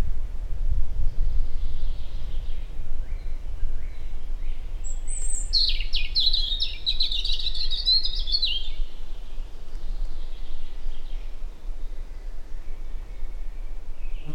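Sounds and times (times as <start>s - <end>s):
European robin Erithacus rubecula singing: 1.1s - 14.3s.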